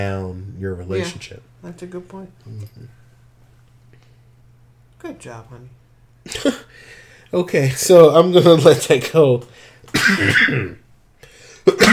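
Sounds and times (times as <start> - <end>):
speech: 0.0 - 3.0, 5.0 - 10.8
person coughing with a throaty rasp: 6.3 - 6.7, 9.9 - 10.8, 11.6 - 11.9.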